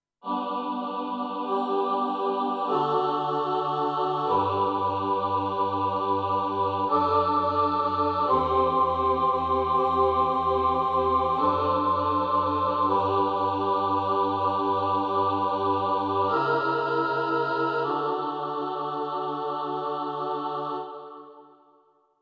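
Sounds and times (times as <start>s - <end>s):
choir singing aahs: 0.3s - 21.6s.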